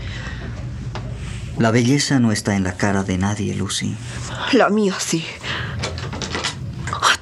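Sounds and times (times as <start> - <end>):
speech: 1.6 - 5.6
door creaking: 5.5 - 7.1.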